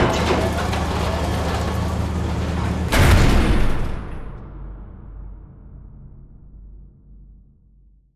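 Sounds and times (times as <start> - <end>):
vertical elevator moving: 0.0 - 3.7.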